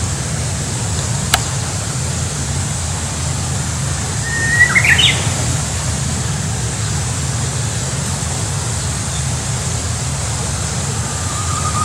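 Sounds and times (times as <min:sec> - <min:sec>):
steady low-frequency background rumble: 0:00.0 - 0:11.8
Japanese bush warbler song: 0:01.3 - 0:11.8.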